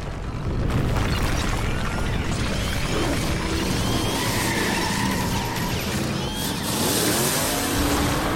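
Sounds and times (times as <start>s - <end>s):
tire noise: 0.0s - 8.3s
racing car engine roaring down a corridor: 2.6s - 8.3s.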